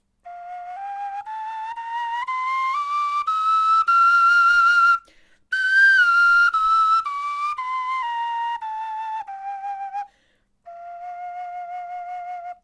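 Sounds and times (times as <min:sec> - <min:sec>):
bone flute playing a scale: 0:00.2 - 0:12.6.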